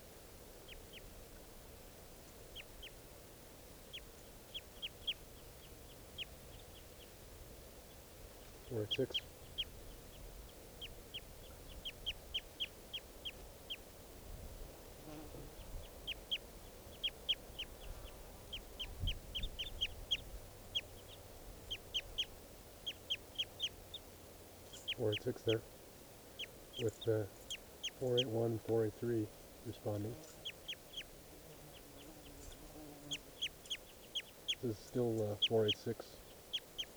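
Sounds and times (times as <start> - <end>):
several birds trading quick high chirping calls: 3.8 - 36.9
speech: 8.7 - 9.3, 25.2 - 25.7, 26.8 - 27.4, 28.0 - 30.3, 34.6 - 36.2.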